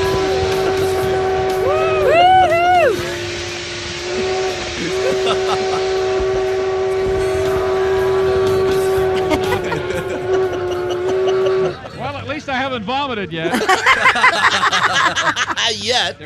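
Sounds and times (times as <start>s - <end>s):
loud steady train whistle: 0.0s - 11.9s
hissing and rumbling rail noise: 0.0s - 16.2s
laughter: 4.8s - 6.2s, 9.1s - 12.3s, 13.4s - 16.2s
speech: 13.2s - 13.9s, 15.7s - 16.2s.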